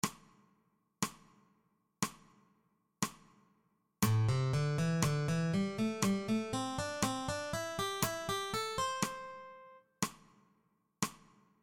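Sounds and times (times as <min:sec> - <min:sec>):
blues pentatonic melody: 0:04.0 - 0:09.8.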